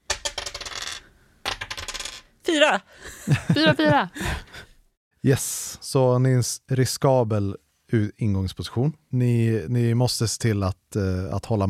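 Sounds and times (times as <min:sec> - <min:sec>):
two dice clattering across a hard surface: 0:00.1 - 0:02.3
speech: 0:02.5 - 0:04.5, 0:05.2 - 0:11.6
laughter: 0:03.0 - 0:04.7.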